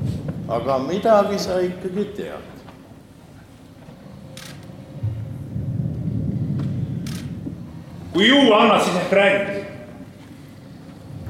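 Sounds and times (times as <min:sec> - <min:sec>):
deep rolling thunder in a storm: 0:00.0 - 0:03.1, 0:04.2 - 0:11.2
hissing gusts of wind or rain: 0:00.0 - 0:11.2
speech: 0:00.5 - 0:02.6, 0:08.2 - 0:09.7.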